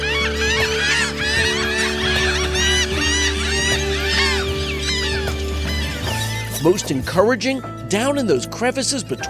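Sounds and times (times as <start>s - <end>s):
puffin colony calling on a protected island southeast of Bremen: 0.0s - 7.2s
speech: 6.6s - 9.2s.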